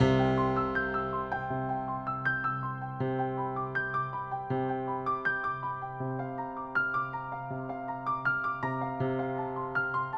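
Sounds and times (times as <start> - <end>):
delicate piano: 0.0 - 10.1.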